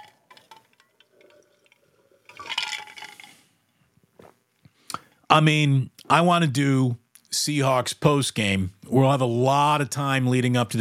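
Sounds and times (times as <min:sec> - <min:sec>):
glass clinking: 0:00.0 - 0:03.4
speech: 0:05.3 - 0:10.7.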